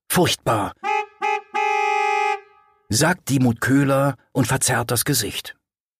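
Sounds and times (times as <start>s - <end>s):
speech: 0.2s - 0.9s, 2.9s - 5.6s
Citroën car horn honking a dissonant second: 0.7s - 2.9s.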